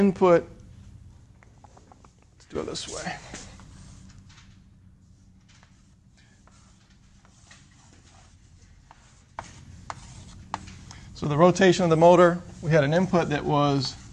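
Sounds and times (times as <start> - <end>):
speech: 0.0 - 0.6, 2.5 - 3.4, 11.2 - 14.0
diagram of a motor system being drawn by hand: 5.6 - 11.1.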